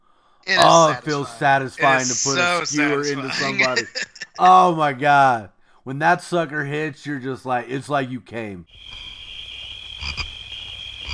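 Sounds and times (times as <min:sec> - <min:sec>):
speech: 0:00.4 - 0:09.1
laughter: 0:00.6 - 0:05.0
chorus of crickets chirping: 0:08.7 - 0:11.1.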